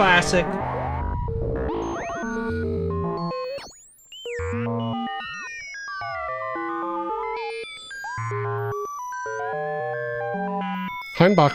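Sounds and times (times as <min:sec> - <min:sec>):
speech: 0:00.0 - 0:00.8, 0:11.2 - 0:11.5
synthesized FM sine-wave tones with bell-like metallic overtones: 0:00.0 - 0:11.1.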